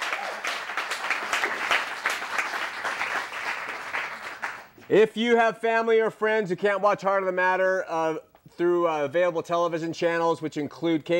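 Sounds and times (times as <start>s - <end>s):
studio audience applause: 0.0s - 4.8s
speech: 4.9s - 11.1s.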